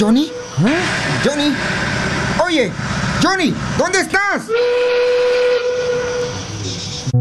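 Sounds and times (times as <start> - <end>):
steam train whistle as the train departs: 0.0 - 1.6, 4.2 - 7.1
speech: 0.0 - 5.8
steam train hiss of steam: 0.0 - 7.1.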